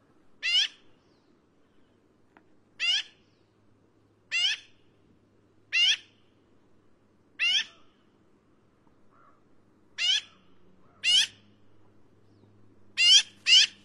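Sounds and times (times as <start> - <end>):
black-billed magpie Pica hudsonia calling with harsh nasal squawks: 0.4 - 0.8, 2.8 - 3.2, 4.3 - 4.8, 5.7 - 6.2, 7.4 - 7.9, 10.0 - 11.4, 13.0 - 13.8.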